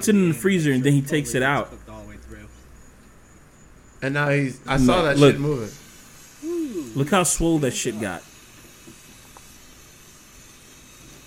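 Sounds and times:
speech: 0.0 - 1.8, 4.0 - 5.8, 6.9 - 8.3
steam hissing from a cooking crab: 5.0 - 11.2.

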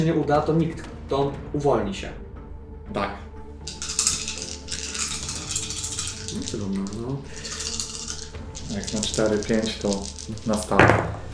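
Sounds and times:
speech: 0.0 - 2.2, 2.9 - 3.3, 6.3 - 7.5, 8.7 - 11.2
dice rattling as a player rolls them during a game: 3.6 - 11.3.

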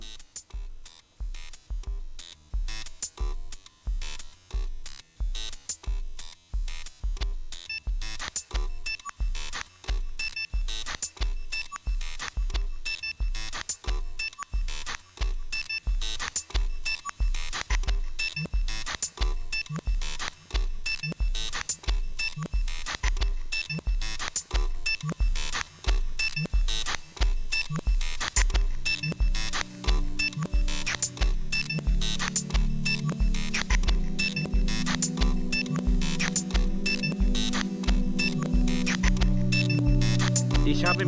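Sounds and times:
steady punchy drum beat in an electronic music track: 0.0 - 41.0
bright beeping synth tones: 28.9 - 41.0.

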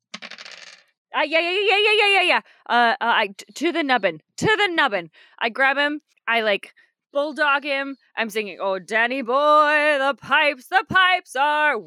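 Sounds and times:
dice tumbling across a hard tabletop: 0.1 - 0.9
speech: 1.2 - 11.8.

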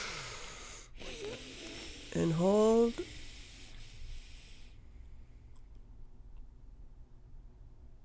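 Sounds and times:
long deep breath drawn in through the nose: 0.0 - 2.2, 2.9 - 5.5
speech: 2.1 - 3.2.

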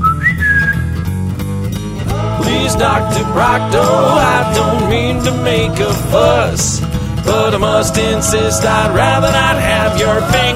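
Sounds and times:
rising whistle sound effect: 0.0 - 1.0
low rumbling: 0.0 - 10.5
speech: 2.7 - 10.5.

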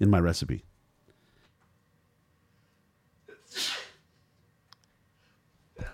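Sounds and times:
speech: 0.0 - 0.8
sneeze: 3.3 - 4.1.

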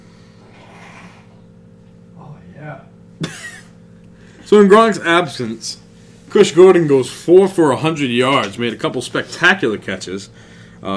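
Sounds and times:
nose blowing: 0.0 - 1.6
steady low hum: 0.0 - 8.0
speech: 4.5 - 10.9.

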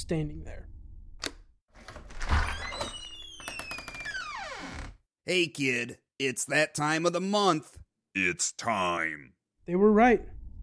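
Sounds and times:
speech: 0.0 - 0.7, 5.3 - 10.4
apartment front door hinge squealing creak: 1.8 - 5.0.

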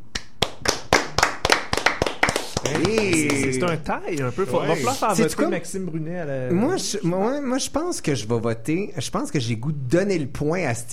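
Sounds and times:
small studio audience clapping in unison: 0.0 - 3.8
speech: 2.7 - 10.9.

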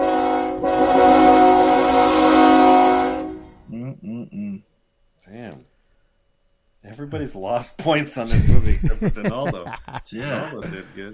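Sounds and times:
train horn blaring: 0.0 - 3.6
speech: 7.1 - 11.1
laughter: 8.2 - 11.1.

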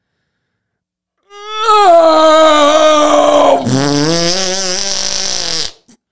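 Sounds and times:
voice imitating a long dying fart: 2.4 - 6.0.

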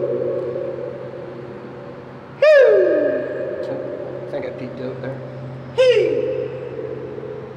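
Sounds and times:
vocal whoops echoing in a concrete tunnel under railway tracks: 0.0 - 1.8, 2.4 - 4.3, 5.8 - 7.5
steady low hum: 0.0 - 7.5.

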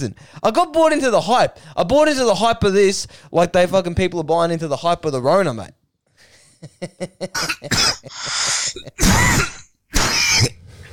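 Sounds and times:
speech: 0.0 - 5.8, 6.6 - 10.6
loud fit of dry coughing: 7.3 - 10.6
throat-clearing rasps: 7.4 - 10.6.

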